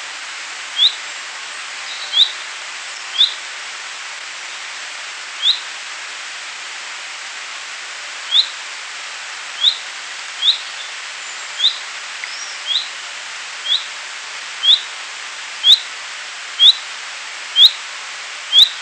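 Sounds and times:
background hiss: 0:00.0 - 0:18.8
common chaffinch Fringilla coelebs calling: 0:00.8 - 0:01.0, 0:01.8 - 0:03.4, 0:05.4 - 0:05.7, 0:08.3 - 0:08.6, 0:09.6 - 0:13.0, 0:13.6 - 0:14.0, 0:14.6 - 0:14.9, 0:15.6 - 0:15.9, 0:16.6 - 0:16.8, 0:17.6 - 0:17.8, 0:18.5 - 0:18.8.

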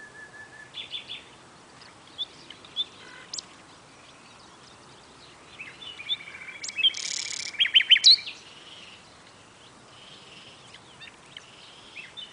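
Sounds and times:
common nightingale song, Luscinia megarhynchos: 0:00.0 - 0:12.3.

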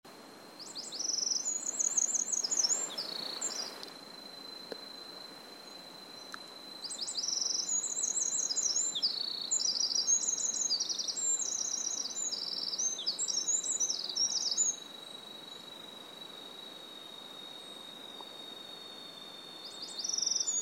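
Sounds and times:
Troglodytes troglodytes: 0:00.2 - 0:20.6.

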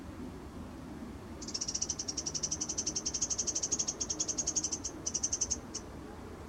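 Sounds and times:
low background noise: 0:00.0 - 0:06.4
Eurasian wren Troglodytes troglodytes calling with hard high tick notes: 0:01.4 - 0:05.9.

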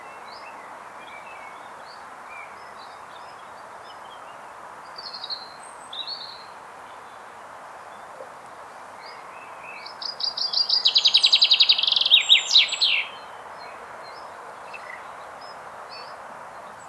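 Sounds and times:
common chaffinch Fringilla coelebs singing a tumbling trill: 0:10.0 - 0:13.4.

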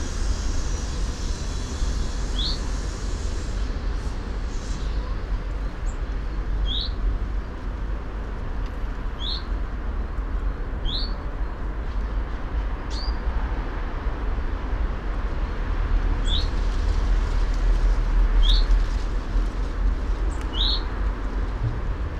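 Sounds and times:
steady low rumble: 0:00.0 - 0:22.1
common chaffinch Fringilla coelebs giving short rising calls: 0:20.5 - 0:20.9.

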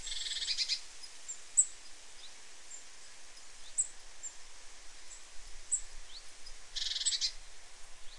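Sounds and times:
great tit Parus major calling: 0:00.0 - 0:02.8, 0:05.7 - 0:07.4
steady hiss: 0:00.0 - 0:08.1.

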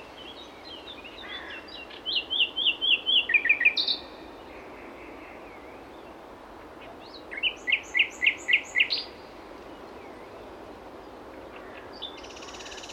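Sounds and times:
common nightingale Luscinia megarhynchos singing: 0:00.0 - 0:04.5, 0:06.8 - 0:10.5, 0:11.5 - 0:12.9.

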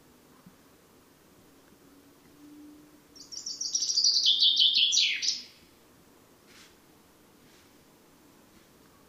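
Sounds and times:
Common chaffinch singing a fast descending rattle of sweet notes: 0:01.8 - 0:05.8.

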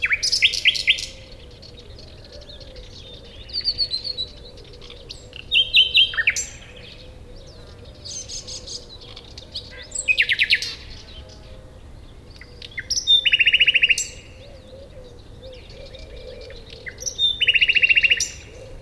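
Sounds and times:
Common nightingale Luscinia megarhynchos singing: 0:00.0 - 0:11.4, 0:12.3 - 0:18.7.

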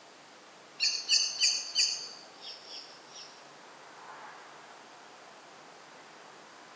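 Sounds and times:
common blackbird Turdus merula giving sharp metallic chinking notes: 0:00.8 - 0:03.3.

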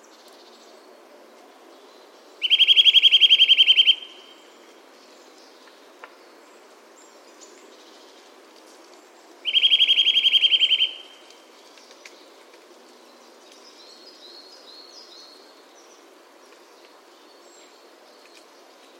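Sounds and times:
Eurasian nuthatch Sitta europaea trilling: 0:02.4 - 0:04.2, 0:09.4 - 0:11.1.

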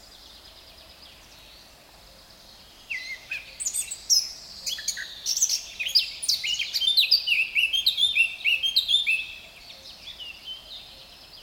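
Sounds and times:
Eurasian blackcap Sylvia atricapilla singing: 0:02.9 - 0:09.4.

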